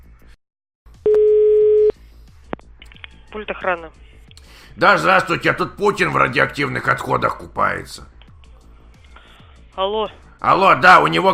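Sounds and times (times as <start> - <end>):
telephone tone after the other party hangs up: 1.1 - 1.9
speech: 3.3 - 4.1, 4.8 - 8.2, 9.8 - 11.3.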